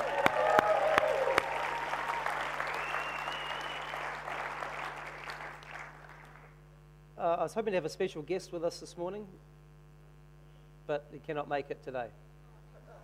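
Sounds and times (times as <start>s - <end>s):
room full of people applauding: 0.0s - 6.5s
speech: 7.4s - 9.5s, 10.9s - 12.2s.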